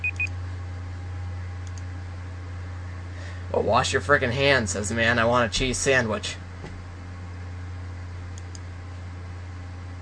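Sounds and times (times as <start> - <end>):
timer alarm beeping: 0.0 - 0.3
low hum: 0.0 - 10.0
speech: 3.5 - 6.4.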